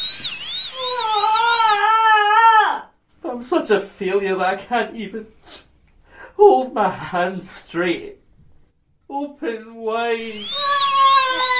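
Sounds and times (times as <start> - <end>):
dental drill whirring with a high-pitched whine: 0.0 - 1.8, 10.2 - 11.5
speech: 3.5 - 5.4, 6.4 - 8.2, 9.1 - 10.8.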